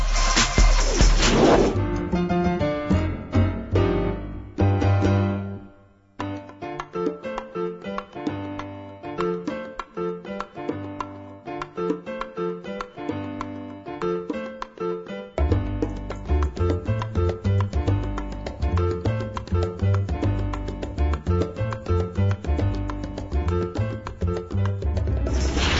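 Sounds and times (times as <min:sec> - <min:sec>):
instrumental music interlude with strong bass line: 0:00.0 - 0:25.7.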